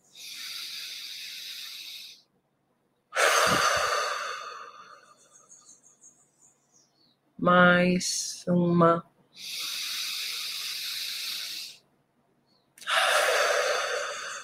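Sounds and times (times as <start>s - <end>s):
deep breath in and out: 0.0s - 2.3s, 3.2s - 5.6s, 9.3s - 11.9s, 12.8s - 14.4s
speech: 7.4s - 9.7s.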